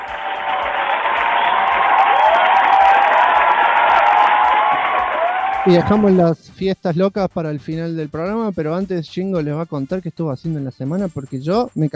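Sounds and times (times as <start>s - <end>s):
crowd applause: 0.0s - 6.2s
speech: 5.6s - 11.9s.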